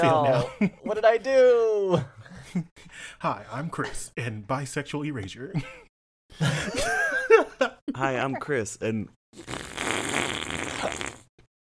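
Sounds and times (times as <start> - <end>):
speech: 0.0 - 7.0, 7.9 - 9.6
fart noise blown with the mouth: 9.4 - 11.5.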